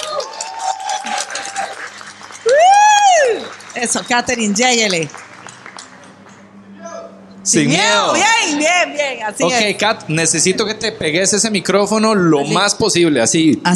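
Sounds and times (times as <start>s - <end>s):
whooping and cheers: 0.0s - 4.6s
small audience clapping: 0.0s - 6.6s
speech: 3.8s - 5.2s, 7.5s - 13.7s.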